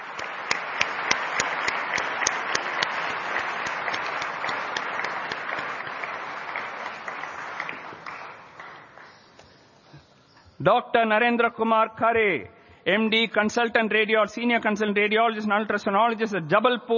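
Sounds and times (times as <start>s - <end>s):
crowd applauding: 0.0s - 9.4s
sharp claps: 0.0s - 9.6s
speech: 10.6s - 16.9s.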